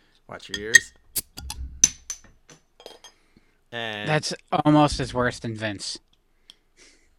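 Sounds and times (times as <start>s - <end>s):
speech: 0.3s - 1.0s, 3.7s - 6.1s
sharp glassy clinks and taps: 0.6s - 3.2s.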